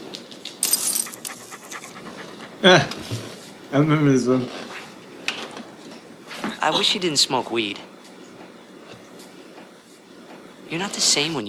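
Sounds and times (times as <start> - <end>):
dog panting in quick breathy bursts: 0.6 - 4.3
speech: 2.6 - 4.6, 6.6 - 7.9, 10.7 - 11.4.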